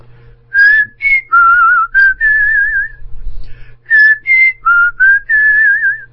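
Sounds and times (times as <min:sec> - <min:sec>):
low hum: 0:00.0 - 0:06.1
person whistling a clear warbling tune: 0:00.5 - 0:03.0, 0:03.9 - 0:06.1.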